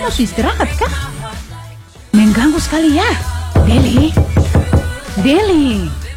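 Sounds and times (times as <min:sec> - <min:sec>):
speech: 0:00.0 - 0:01.2, 0:02.4 - 0:04.4, 0:05.2 - 0:06.0
sharp knocks on a room door in a boarding-house complex: 0:03.6 - 0:06.1.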